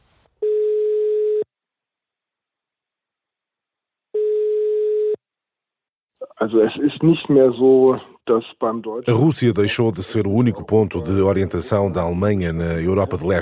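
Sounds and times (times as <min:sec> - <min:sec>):
telephone ringing tone through the line: 0:00.4 - 0:01.5, 0:04.2 - 0:05.2
speech: 0:06.4 - 0:13.4.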